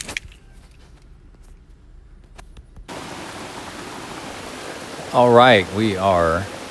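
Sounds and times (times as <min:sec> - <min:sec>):
rain falling at a campsite: 0:02.9 - 0:06.6
speech: 0:05.1 - 0:06.6.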